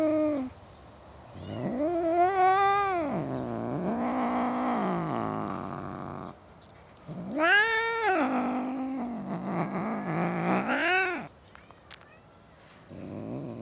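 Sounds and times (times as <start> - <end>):
domestic cat yowling in a suburban garden: 1.4 - 6.3, 7.2 - 11.3.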